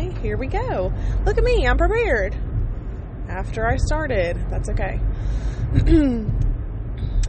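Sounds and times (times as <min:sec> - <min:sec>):
road and engine noise inside a moving car: 0:00.0 - 0:07.2
speech: 0:00.2 - 0:02.5, 0:03.3 - 0:06.4.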